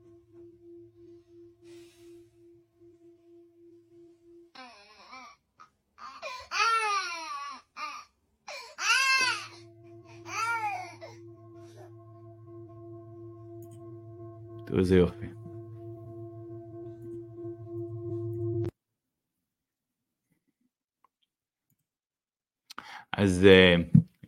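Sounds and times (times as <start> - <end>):
sustained humming metallic tone: 0.0 - 5.4, 8.8 - 18.7
infant wailing: 6.0 - 9.5
speech: 14.8 - 15.4, 23.2 - 23.9.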